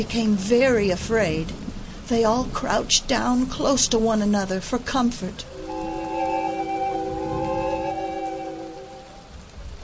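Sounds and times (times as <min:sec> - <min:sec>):
speech: 0:00.0 - 0:05.5
heavy rain pouring down: 0:00.0 - 0:09.8
sustained tonal ringing: 0:05.4 - 0:09.4.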